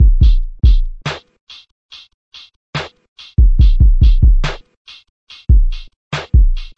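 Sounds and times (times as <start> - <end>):
dark kick drum in a drum loop: 0.0 - 1.0, 3.4 - 4.6, 5.5 - 6.7
snare drum in a drum loop: 0.0 - 1.3, 2.8 - 4.7, 5.3 - 6.7
hi-hat in a drum loop: 0.0 - 6.7.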